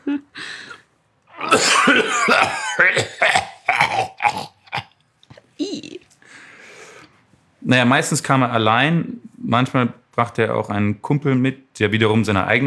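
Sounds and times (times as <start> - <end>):
short gasps: 0.3 - 0.8, 6.2 - 7.2
voice imitating a deep rattling demonic hacking cough: 1.4 - 4.9
speech: 1.6 - 3.1, 7.7 - 12.6.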